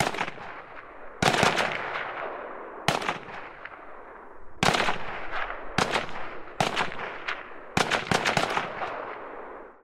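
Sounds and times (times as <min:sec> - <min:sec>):
rifle gunshot: 0:00.0 - 0:09.8.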